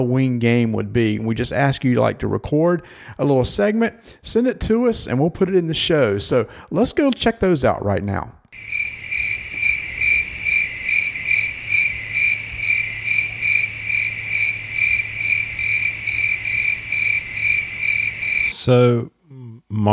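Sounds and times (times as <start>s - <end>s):
speech: 0.0s - 8.4s, 18.6s - 19.9s
crickets chirping: 8.5s - 18.9s.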